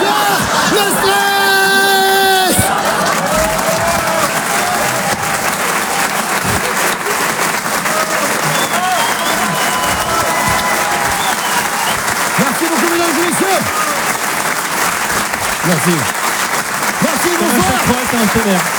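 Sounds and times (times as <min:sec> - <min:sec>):
large crowd applauding: 0:00.0 - 0:18.7
laughter: 0:00.0 - 0:18.7
speech: 0:15.9 - 0:16.2, 0:18.2 - 0:18.7.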